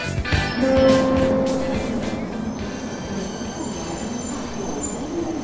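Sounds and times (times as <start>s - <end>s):
London Underground train rumbling on the rails: 0.1s - 5.4s.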